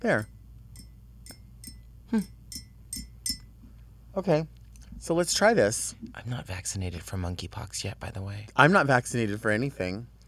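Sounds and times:
speech: 0.0s - 0.3s, 2.1s - 2.4s, 4.2s - 10.1s
stirring a pumpkin spice drink in a glass: 0.0s - 3.5s.

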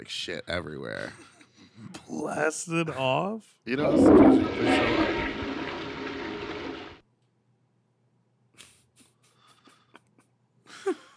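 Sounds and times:
speech: 0.0s - 5.4s
toilet flush rush of water: 3.7s - 7.0s
low hum: 3.8s - 7.0s.

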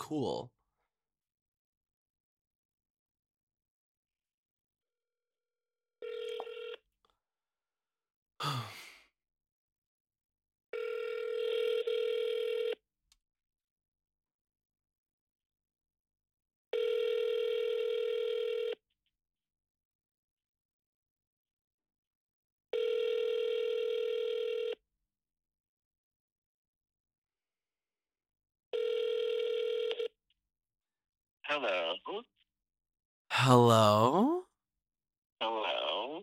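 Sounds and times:
speech: 0.1s - 0.6s, 8.4s - 8.8s, 31.5s - 32.4s, 33.3s - 34.4s
telephone dialing tones while placing a call: 6.0s - 6.8s, 10.8s - 12.8s, 16.8s - 18.8s, 22.8s - 24.8s, 28.8s - 30.2s.

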